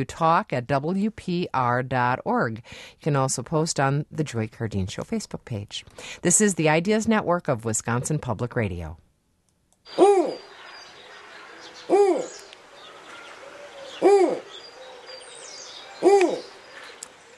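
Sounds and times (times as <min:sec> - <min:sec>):
speech: 0:00.0 - 0:09.0, 0:09.8 - 0:10.1
faint higher bird chatter: 0:09.9 - 0:17.3
snowy owl hooting: 0:09.9 - 0:17.3.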